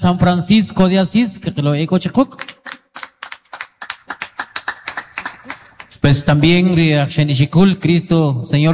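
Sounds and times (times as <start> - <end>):
speech: 0.0 - 2.6, 6.1 - 8.7
audience applause in honor of a local church community: 2.6 - 6.0.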